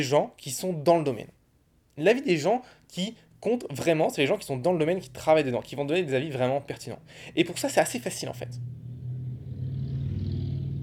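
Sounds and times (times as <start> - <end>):
speech: 0.0 - 1.4, 2.0 - 8.8
motorcycle engine rumbling past outside: 6.9 - 10.8.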